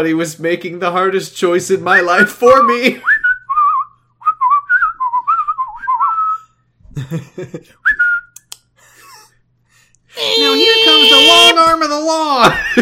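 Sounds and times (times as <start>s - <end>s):
speech: 0.0s - 3.1s, 7.1s - 8.0s, 10.2s - 12.7s
thin wavering whistle: 3.1s - 6.6s.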